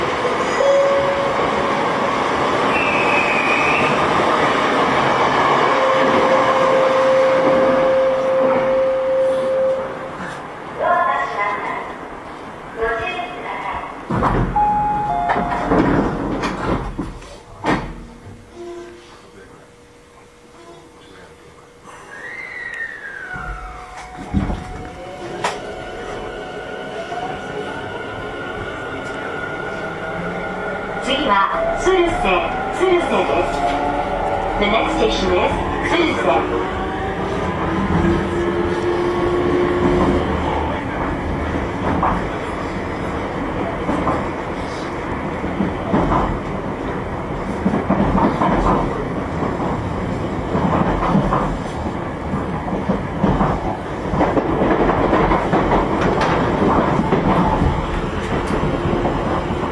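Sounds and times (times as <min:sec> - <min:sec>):
50000 series train running between stations: 0:00.0 - 0:59.7
50000 series train exterior buzzer: 0:05.8 - 0:10.1, 0:14.6 - 0:15.9.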